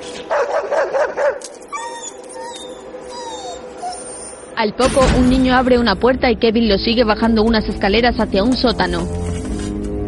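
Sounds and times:
dog on a leash barking: 0.3 - 1.5
dog on a leash whimpering and whining: 1.2 - 4.6
speech: 4.6 - 9.3.

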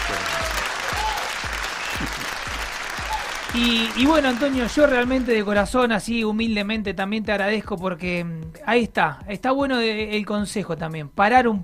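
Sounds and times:
crowd from the mountain community applauding: 0.0 - 5.5
speech: 3.6 - 11.6.

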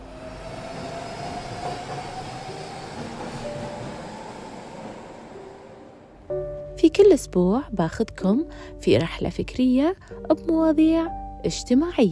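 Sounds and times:
metro train rumbling on rails: 0.0 - 6.7
speech: 6.8 - 12.1.

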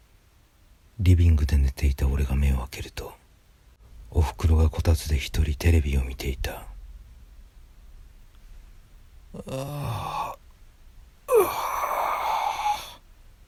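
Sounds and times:
speech: 1.0 - 3.2, 4.1 - 6.7, 9.3 - 10.3
person yawning: 9.3 - 10.4, 11.3 - 13.0.

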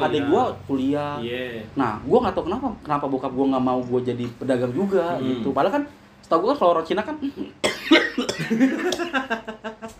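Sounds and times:
speech: 0.0 - 9.6
person coughing harshly with throaty sputters: 7.6 - 8.7
laughter: 8.2 - 9.9.

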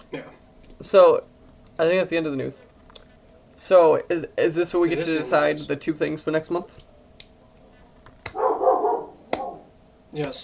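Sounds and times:
speech: 0.1 - 2.7, 3.6 - 6.8, 10.1 - 10.4
dog giving a short whiny bark-like vocalization: 8.3 - 9.7.

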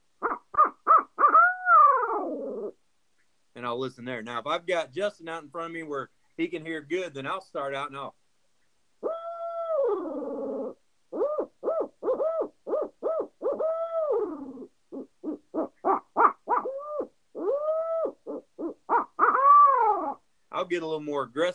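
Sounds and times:
owl hooter call imitating an owl's hoot used while turkey hunting: 0.2 - 2.8, 9.0 - 20.2
speech: 3.7 - 8.2, 20.7 - 21.5.

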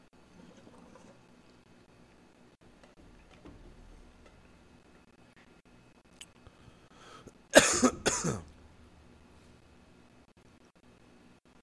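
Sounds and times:
soft inhale: 6.4 - 7.4
sharp coughs after inhaling hot smoke: 7.5 - 8.5.

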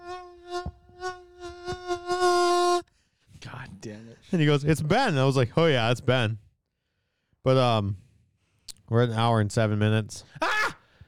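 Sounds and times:
woman imitating a mosquito's whine at a barbecue: 0.0 - 2.8
speech: 3.8 - 6.4, 7.4 - 8.0, 8.9 - 10.5.

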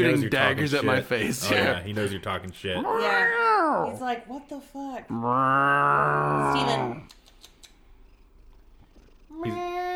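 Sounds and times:
speech: 0.0 - 7.2
male cat purring loudly: 7.8 - 9.9.

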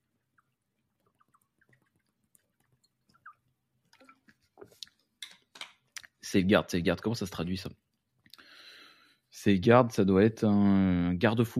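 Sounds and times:
person sipping a drink: 0.2 - 5.1
speech: 6.3 - 7.9, 9.4 - 11.5.

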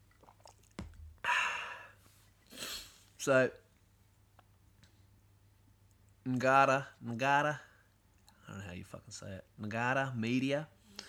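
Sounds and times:
person sipping a drink: 0.0 - 3.0
speech: 3.2 - 3.6, 6.3 - 7.7, 8.5 - 11.0.

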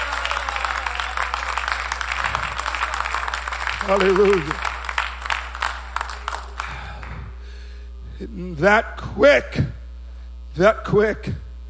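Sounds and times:
audience applause: 0.0 - 7.4
low hum: 0.0 - 11.6
speech: 3.9 - 4.7, 8.4 - 9.7, 10.6 - 11.4.

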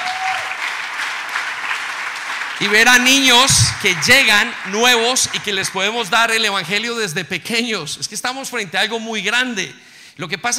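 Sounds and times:
audience applauding the opening of a new nursery: 0.0 - 6.6
speech: 2.6 - 10.5.

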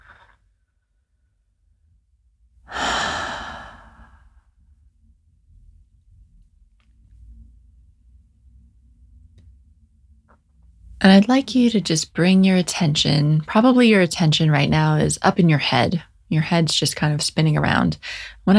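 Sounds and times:
faint low room noise: 0.0 - 18.5
slow deep exhale: 2.7 - 4.4
speech: 11.0 - 18.5.

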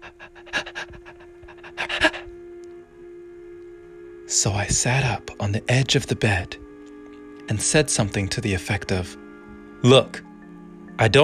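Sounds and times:
person breathing heavily and rapidly at night in a house: 0.0 - 2.4
speech: 4.3 - 6.6, 7.5 - 9.2, 9.8 - 10.3, 11.0 - 11.2.

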